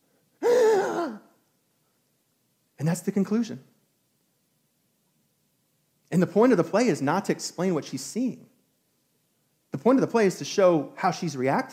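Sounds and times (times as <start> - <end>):
voice imitating a theatrical gasp: 0.4 - 1.4
speech: 2.8 - 3.8, 6.1 - 8.5, 9.8 - 11.7.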